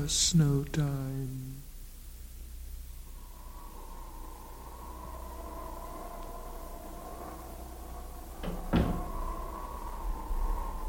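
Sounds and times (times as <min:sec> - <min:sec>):
speech: 0:00.0 - 0:01.6
low steady hum: 0:00.0 - 0:10.8
distant doors shutting: 0:03.3 - 0:10.8.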